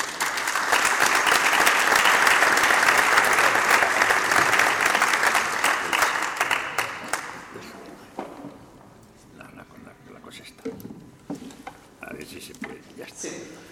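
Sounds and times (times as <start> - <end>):
isolated claps: 0.0 - 7.5
audience applause: 0.0 - 7.8.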